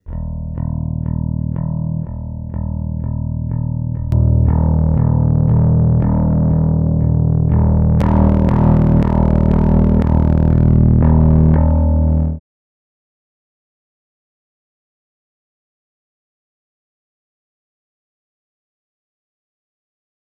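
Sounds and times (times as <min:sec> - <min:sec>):
bass with clean overdrive fuzz through Palmer Pocket Bass Amp: 0:00.0 - 0:12.4.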